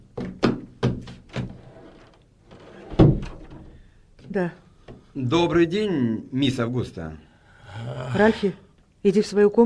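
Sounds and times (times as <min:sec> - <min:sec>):
knocking on a wooden door: 0:00.1 - 0:01.5
speech: 0:04.4 - 0:04.6, 0:05.2 - 0:09.6.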